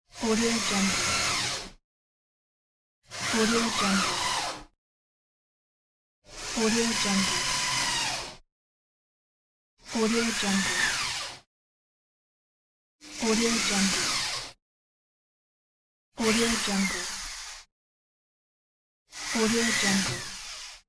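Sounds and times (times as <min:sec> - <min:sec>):
electric screwdriver: 0:00.3 - 0:01.8, 0:03.1 - 0:04.7, 0:06.3 - 0:08.4, 0:10.0 - 0:11.4, 0:13.0 - 0:14.6, 0:16.2 - 0:17.7, 0:19.1 - 0:20.8.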